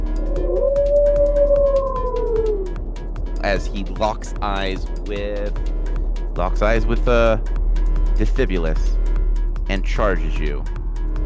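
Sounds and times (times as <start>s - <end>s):
low hum: 0.0s - 11.2s
person imitating a wolf howl: 0.2s - 2.8s
speech: 3.5s - 5.7s, 6.4s - 7.6s, 8.2s - 9.0s, 9.7s - 10.8s.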